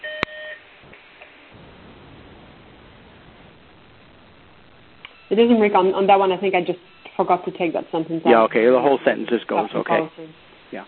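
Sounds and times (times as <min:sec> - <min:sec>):
short electronic alarm beep: 0:05.1 - 0:07.3
speech: 0:05.3 - 0:10.8.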